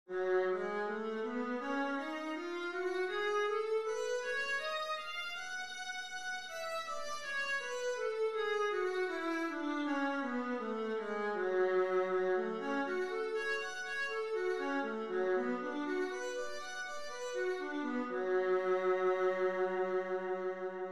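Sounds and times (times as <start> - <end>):
viola playing F sharp minor scales: 0.1 - 20.9.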